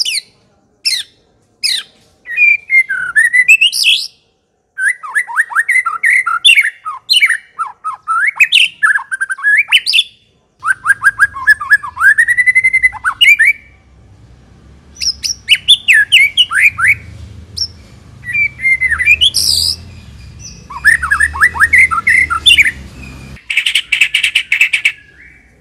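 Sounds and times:
White-rumped shama singing fluty whistles and chirps: 0.9s - 4.2s, 4.8s - 13.8s, 15.0s - 25.5s
faint low hum: 10.3s - 23.4s.

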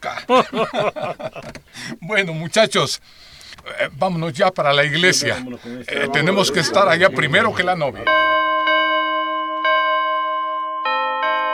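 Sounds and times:
laughter: 0.0s - 1.5s, 4.9s - 8.4s
speech: 0.0s - 8.4s
church bells ringing joyfully on a wedding day: 6.0s - 11.5s.

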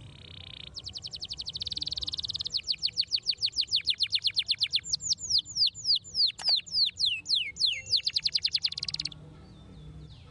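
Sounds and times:
Belgian canary song with trill and downslurred whistled notes: 0.0s - 10.2s.

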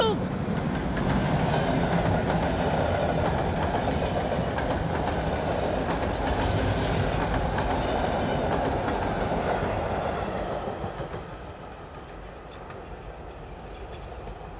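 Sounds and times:
express train rushing past: 0.0s - 14.5s
express train wheels rumbling on rails: 0.2s - 14.5s.

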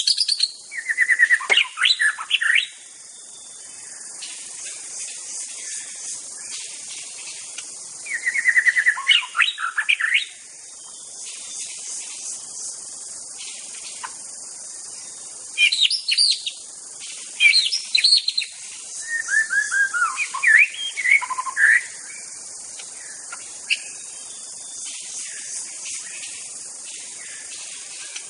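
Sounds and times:
wild white-rumped shama singing fluty whistles in forest: 0.0s - 3.6s, 8.0s - 10.4s, 15.6s - 16.6s, 17.4s - 22.1s
insect buzz in forest: 0.0s - 28.2s.

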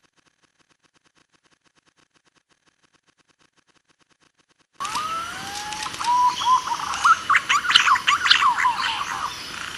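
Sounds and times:
green pigeon whistled song used as a trapping lure: 4.8s - 9.4s.

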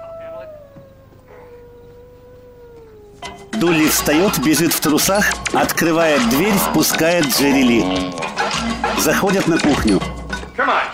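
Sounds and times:
dog howling: 0.0s - 8.6s
speech: 3.6s - 10.9s.

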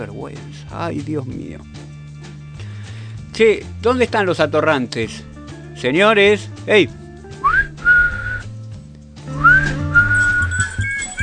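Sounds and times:
speech: 0.0s - 1.8s, 3.4s - 7.0s
group of people whistling together: 7.5s - 8.5s, 9.4s - 11.2s.

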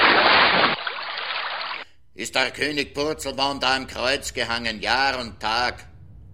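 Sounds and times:
urine stream splashing down from above: 0.0s - 1.8s
speech: 2.2s - 5.9s.

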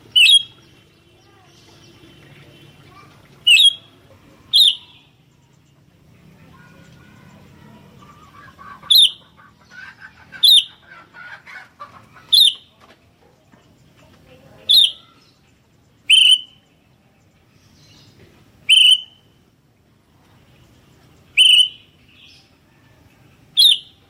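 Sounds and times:
Sooty-headed bulbul loud piercing chirps: 0.0s - 5.3s, 6.4s - 9.4s, 10.3s - 10.8s, 12.3s - 12.7s, 14.6s - 16.8s, 17.7s - 19.6s, 21.2s - 22.4s, 23.5s - 24.0s
soft chattering and twittering: 0.0s - 24.0s.

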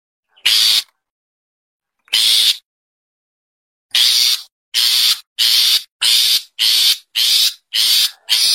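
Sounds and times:
Long-tailed Shrike calling with hoarse rasps: 0.4s - 0.9s, 2.1s - 2.6s, 3.9s - 8.5s.

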